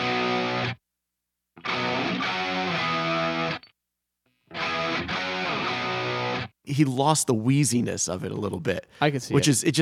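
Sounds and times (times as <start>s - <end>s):
tight overdriven electric guitar playing distorted chords: 0.0s - 0.8s, 1.6s - 3.7s, 4.5s - 6.5s
speech: 6.7s - 9.7s.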